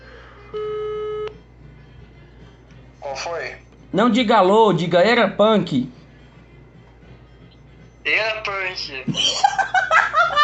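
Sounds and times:
faint hum: 0.0s - 10.4s
ringback tone of an outgoing telephone call: 0.5s - 1.4s
speech: 3.1s - 6.0s, 8.1s - 10.4s
laughter: 9.1s - 10.4s.

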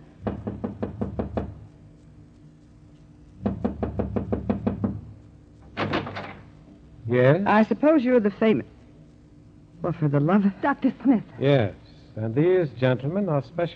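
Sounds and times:
firm knocking on a door: 0.2s - 1.7s, 3.4s - 5.2s
speech: 7.1s - 8.8s, 9.8s - 13.7s.

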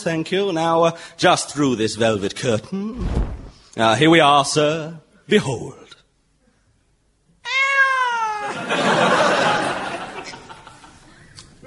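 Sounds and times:
speech: 0.0s - 5.9s
tabby cat meowing: 7.4s - 8.5s
laughter: 8.4s - 11.2s.

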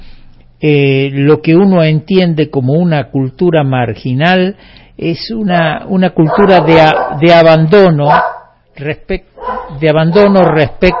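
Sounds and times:
speech: 0.6s - 10.9s
pet dogs barking: 6.1s - 8.6s, 9.4s - 10.9s.

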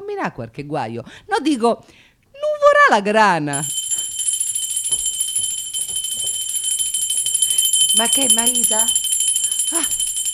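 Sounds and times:
speech: 0.2s - 2.1s, 2.9s - 3.8s, 8.0s - 9.0s
high-pitched electric doorbell ringing: 3.6s - 10.3s.

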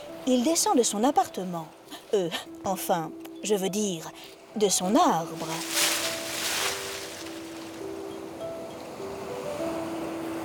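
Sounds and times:
speech: 0.2s - 5.8s
gentle waves on a calm clear sea after a storm: 5.3s - 10.4s.

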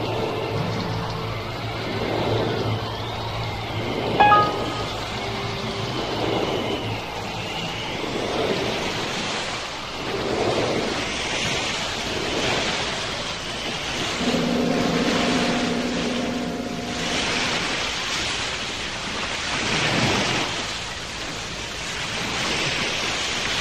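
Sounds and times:
ocean waves in the open sea as people swim: 0.0s - 23.5s.

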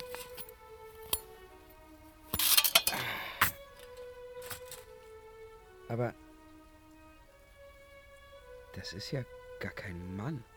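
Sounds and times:
metal armour clinking as it is taken off a sleeping warrior: 0.0s - 1.5s, 2.3s - 4.9s
speech: 5.9s - 6.2s, 8.8s - 10.5s.

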